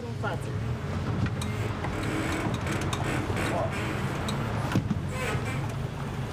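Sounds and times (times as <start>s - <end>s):
faint rush of wind and water: 0.0s - 6.3s
motorboat engine on the Bicaz Reservoir droning: 0.0s - 6.3s.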